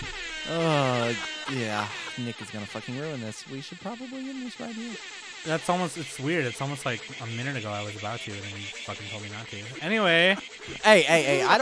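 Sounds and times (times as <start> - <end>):
air horn sound effect from a soundboard: 0.0 - 11.6
faint hiss: 0.0 - 11.6
laughter: 0.0 - 11.6
speech: 0.5 - 11.6.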